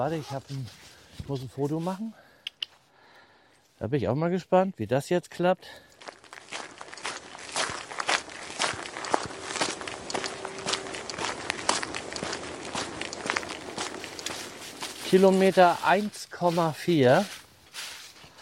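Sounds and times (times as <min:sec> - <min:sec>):
speech: 0:00.0 - 0:02.2, 0:03.8 - 0:05.9, 0:15.1 - 0:17.4
footsteps of people running along a forest path on fallen leaves near a fjord: 0:06.0 - 0:18.4.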